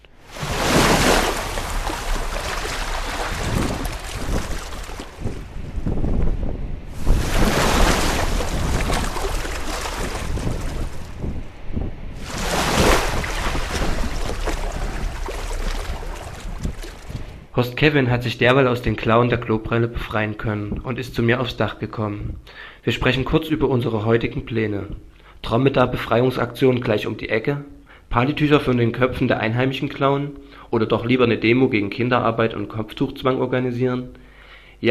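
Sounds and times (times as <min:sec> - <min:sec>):
churning water: 0:00.0 - 0:05.7, 0:06.9 - 0:11.4, 0:12.2 - 0:17.5
Red Sea waves breaking in roaring surges: 0:00.0 - 0:17.5
stormy wind: 0:00.0 - 0:17.6
speech: 0:17.6 - 0:34.2.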